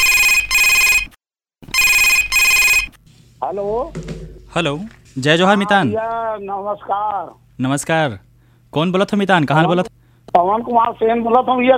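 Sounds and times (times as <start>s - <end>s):
telephone ringing: 0.0s - 3.0s
speech: 3.5s - 11.7s.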